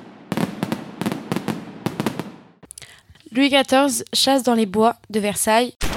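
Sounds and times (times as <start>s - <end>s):
fireworks exploding: 0.0s - 2.6s
speech: 3.3s - 5.9s.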